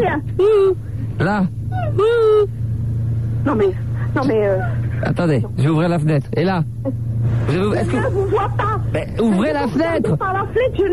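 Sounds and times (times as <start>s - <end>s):
car engine rumble heard from inside the vehicle: 0.0s - 10.9s
speech: 0.1s - 2.6s, 3.4s - 10.9s.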